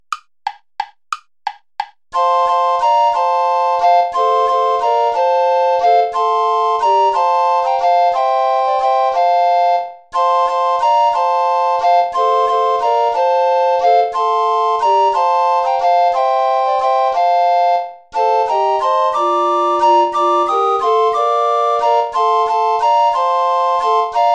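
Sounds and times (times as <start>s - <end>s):
recorder play-along tune without bass recorder: 2.2s - 24.3s.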